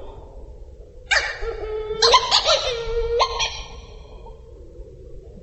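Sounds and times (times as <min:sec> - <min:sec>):
Hawaiian petrel harsh nasal calls in Haleakala National Park: 0:01.1 - 0:03.9.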